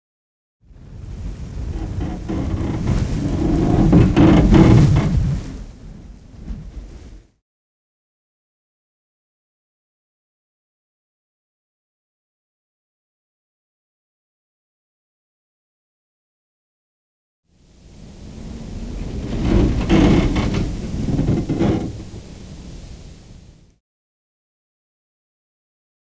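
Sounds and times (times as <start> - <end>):
wind gust: 0.6 - 7.4, 17.5 - 23.8.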